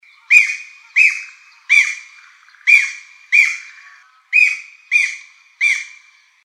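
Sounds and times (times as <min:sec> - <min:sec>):
Japanese green woodpecker giving harsh loud calls: 0:00.0 - 0:06.3.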